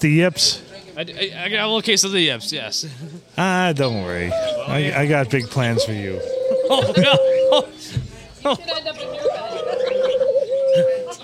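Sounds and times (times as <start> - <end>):
speech: 0.0 - 9.3, 10.8 - 11.0
laughter: 2.8 - 3.4, 6.5 - 11.2
person's voice imitating doves cooing: 5.8 - 7.7, 9.0 - 11.2.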